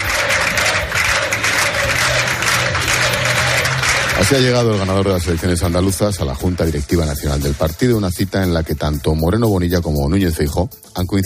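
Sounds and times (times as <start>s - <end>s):
crowd shouting presidente: 0.0s - 5.8s
large crowd applauding at a party headquarters: 0.0s - 9.5s
speech: 4.2s - 11.2s.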